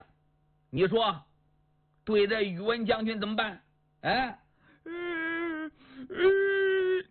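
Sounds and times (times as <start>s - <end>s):
speech: 0.7s - 1.3s, 2.0s - 5.0s, 6.0s - 6.5s
performer's voice imitating a frightened man crying: 4.8s - 7.1s.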